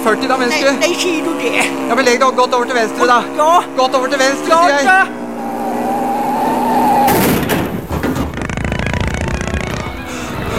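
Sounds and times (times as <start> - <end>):
speech: 0.0 - 5.2
car engine humming and stalling: 5.3 - 10.5.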